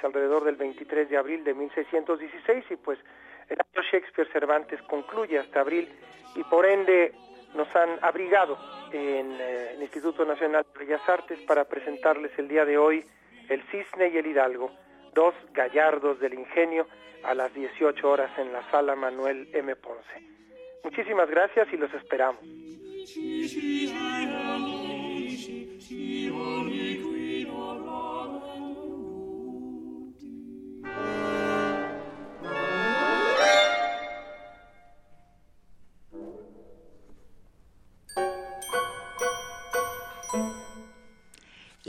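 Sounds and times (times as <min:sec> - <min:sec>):
speech: 0:00.0 - 0:28.6
modern orchestral music imitating exotic birdsong: 0:30.8 - 0:34.8, 0:38.1 - 0:41.4
bright tinkling percussion: 0:38.1 - 0:41.8.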